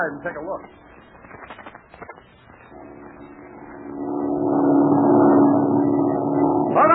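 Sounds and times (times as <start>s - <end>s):
airplane engine droning overhead: 2.7s - 6.9s.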